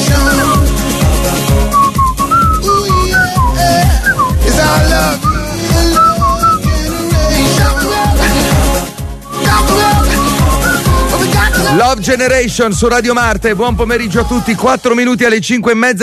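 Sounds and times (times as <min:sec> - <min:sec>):
bright whistled bouncy melody: 0:00.0 - 0:08.6, 0:09.2 - 0:11.8
loud steady dance beat with bass and backing music: 0:00.0 - 0:15.6
speech: 0:12.0 - 0:16.0.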